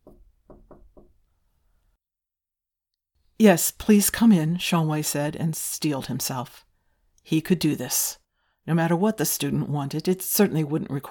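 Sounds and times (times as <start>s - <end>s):
soft weak knocks on a wooden door: 0.0s - 1.2s
speech: 3.4s - 11.0s.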